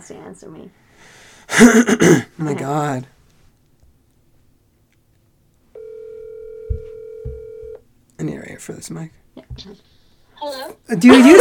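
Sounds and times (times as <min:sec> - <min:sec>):
speech: 0:00.0 - 0:03.2, 0:08.2 - 0:11.4
phone ringing tone while placing a call: 0:05.8 - 0:07.8
low thumps: 0:06.6 - 0:07.7
laughter: 0:10.9 - 0:11.4.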